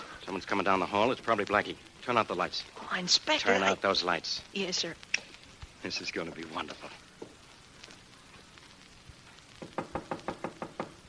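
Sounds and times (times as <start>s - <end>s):
speech: 0.3s - 5.2s, 5.8s - 7.0s
knocking on a door: 9.6s - 11.0s.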